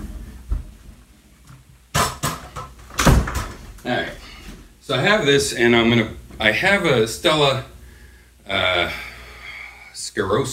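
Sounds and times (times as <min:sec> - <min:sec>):
door swinging shut with a loud thump: 0:02.0 - 0:03.6
speech: 0:03.8 - 0:04.2, 0:04.9 - 0:07.7, 0:08.5 - 0:09.1, 0:10.1 - 0:10.5.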